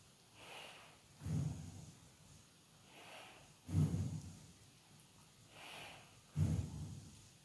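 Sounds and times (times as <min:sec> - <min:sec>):
slow deep breathing during a mindful breathing exercise: 0:00.4 - 0:02.0, 0:02.8 - 0:04.4, 0:05.5 - 0:07.2.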